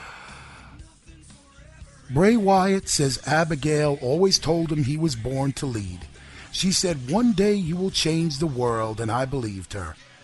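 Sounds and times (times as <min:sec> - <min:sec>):
heavy raspy breathing: 0:00.0 - 0:00.8, 0:06.0 - 0:06.6
speech: 0:02.1 - 0:10.1.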